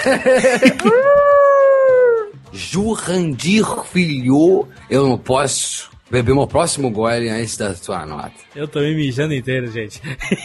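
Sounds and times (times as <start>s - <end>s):
speech: 0.0s - 1.4s, 2.5s - 10.4s
laughter: 0.0s - 2.0s, 10.0s - 10.4s
dog howling: 0.8s - 2.4s.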